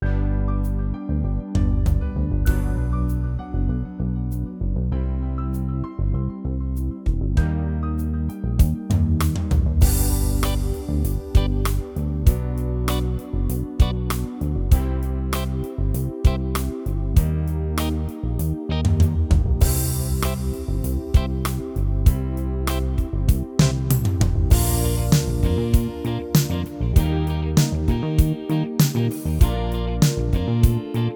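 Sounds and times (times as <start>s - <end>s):
eighties boyband style ballad on an arranger keyboard: 0.0s - 31.1s.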